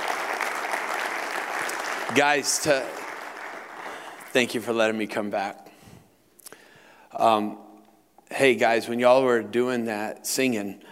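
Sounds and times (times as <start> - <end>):
audience applauding: 0.0 - 4.8
speech: 2.1 - 3.0, 4.4 - 5.6, 7.2 - 7.6, 8.3 - 10.8.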